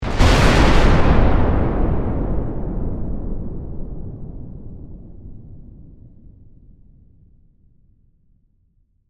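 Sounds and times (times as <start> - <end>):
massive bomb explosion in warfare: 0.0 - 6.6.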